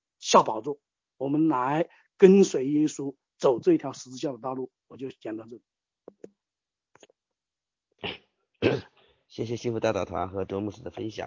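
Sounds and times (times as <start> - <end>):
speech: 0.3 - 6.2, 8.0 - 11.2
short harsh coughs: 8.0 - 9.0.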